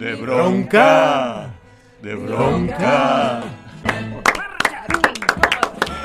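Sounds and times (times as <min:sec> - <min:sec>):
speech: 0:00.0 - 0:03.6
hands clapping: 0:03.4 - 0:06.0.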